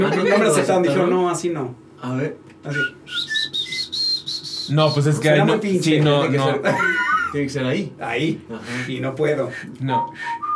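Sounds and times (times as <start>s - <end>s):
speech: 0.0s - 3.3s, 4.7s - 10.3s
person whistling through the lips: 2.7s - 5.1s, 9.6s - 10.5s
laughter: 6.4s - 7.5s.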